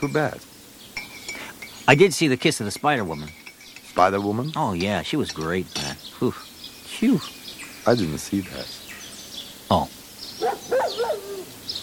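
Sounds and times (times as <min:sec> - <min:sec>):
speech: 0:00.0 - 0:00.6, 0:01.9 - 0:03.4, 0:04.0 - 0:08.8, 0:09.7 - 0:10.0
dog howling: 0:10.4 - 0:11.6.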